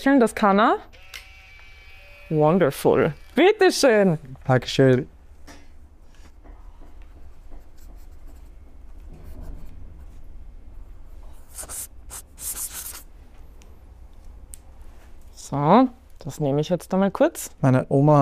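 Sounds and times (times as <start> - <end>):
speech: 0.0 - 1.1, 2.3 - 5.1, 15.5 - 18.2
pen scratching on paper writing a guestbook entry: 11.5 - 13.0.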